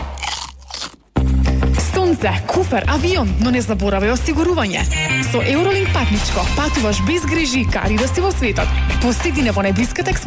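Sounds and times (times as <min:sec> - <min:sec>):
Vitalia Elements Air Pop Chips crunching: 0:00.1 - 0:01.2
speech: 0:02.2 - 0:10.2.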